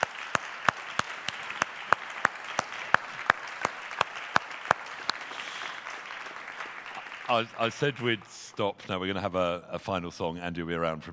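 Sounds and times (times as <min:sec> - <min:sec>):
audience applauding a preacher after a sermon: 0:00.0 - 0:08.9
sharp evenly spaced claps: 0:00.0 - 0:08.9
speech: 0:07.3 - 0:11.1.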